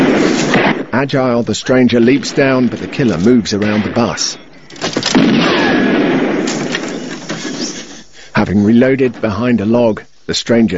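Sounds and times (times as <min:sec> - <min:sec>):
shotgun blasts during a shootout around a bus: 0:00.0 - 0:01.0, 0:02.1 - 0:07.6
speech: 0:00.9 - 0:05.8, 0:08.4 - 0:10.7.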